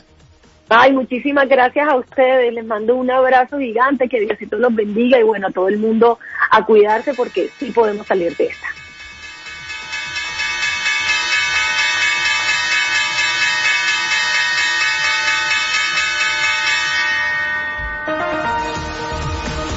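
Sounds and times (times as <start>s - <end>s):
speech: 0.7s - 8.7s
opening bell ringing at a stock exchange: 6.7s - 19.7s.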